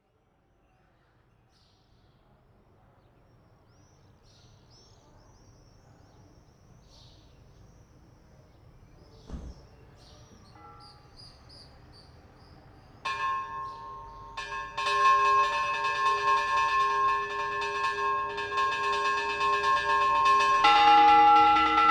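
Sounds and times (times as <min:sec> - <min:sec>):
church bells ringing in San Antolin, Ibias: 0:13.1 - 0:21.9.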